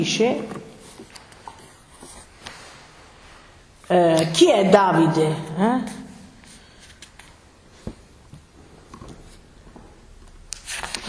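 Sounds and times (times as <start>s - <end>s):
speech: 0.0s - 0.6s, 3.9s - 6.0s
book pages being turned: 0.4s - 2.7s, 6.4s - 11.0s.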